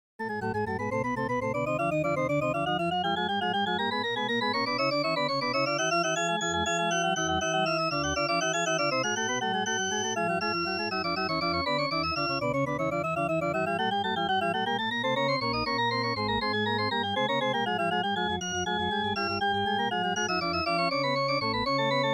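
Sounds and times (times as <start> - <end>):
13ET organ pipe prelude: 0.2 - 22.1.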